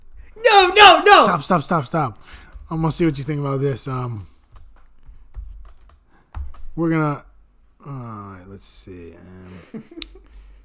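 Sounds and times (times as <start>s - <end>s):
speech: 0.4s - 4.3s, 6.8s - 10.2s
typing on a computer keyboard: 4.0s - 6.8s.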